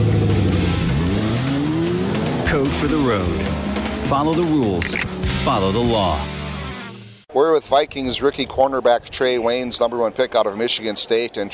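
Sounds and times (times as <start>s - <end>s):
V8 car engine revving: 0.0s - 7.2s
speech: 2.5s - 6.3s, 7.4s - 11.5s.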